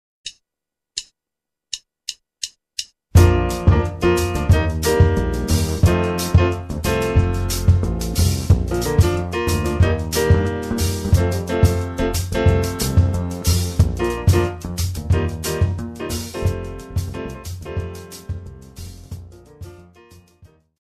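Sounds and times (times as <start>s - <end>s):
basic jazz music: 3.2s - 20.6s.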